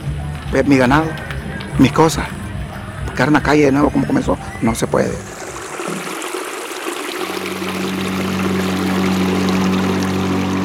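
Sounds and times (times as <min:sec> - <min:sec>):
boat motor droning: 0:00.0 - 0:10.6
speech: 0:00.5 - 0:02.4, 0:03.2 - 0:05.3
river water rushing around a small metal boat: 0:04.6 - 0:10.6.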